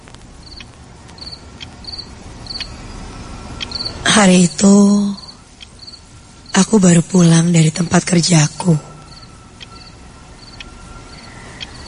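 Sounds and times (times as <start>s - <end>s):
crickets chirping at night among tall wild grass and large trees: 0.0s - 11.8s
low hiss: 0.0s - 11.8s
speech: 4.2s - 5.2s, 6.6s - 8.9s.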